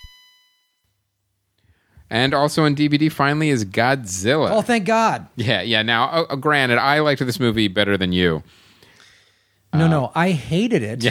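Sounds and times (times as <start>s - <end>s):
bell ding: 0.0s - 0.8s
speech: 2.1s - 8.6s, 9.7s - 11.0s.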